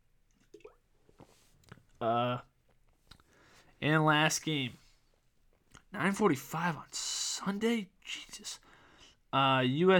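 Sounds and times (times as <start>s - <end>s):
person sipping water with wet mouth clicks: 0.3s - 2.0s
speech: 2.0s - 2.5s, 3.8s - 4.8s, 6.0s - 8.7s, 9.3s - 9.9s.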